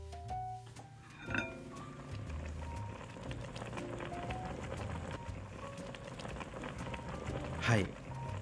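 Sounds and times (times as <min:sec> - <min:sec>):
pot of beef offal hotpot simmering on stove: 0:00.1 - 0:08.4.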